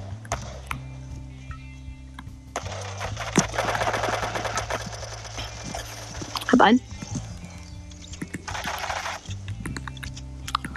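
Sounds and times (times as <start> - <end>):
low musical hum: 0.0 - 10.7
video game MK7 assault rifle gunfire: 2.6 - 6.3, 8.4 - 9.3
speech: 6.6 - 6.9.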